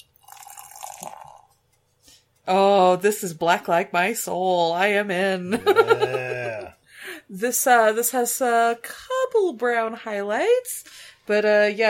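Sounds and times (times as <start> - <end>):
black beer pouring from a bottle into a glass: 0.0 - 1.6
speech: 2.5 - 6.4, 7.3 - 11.8
laughter: 5.5 - 6.7.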